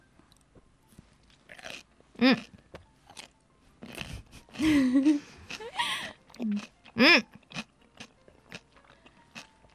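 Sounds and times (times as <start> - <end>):
crisp bites and crunchy chewing of homemade rice-vinegar pickles: 1.2 - 4.6, 5.4 - 9.7
speech: 2.2 - 2.5.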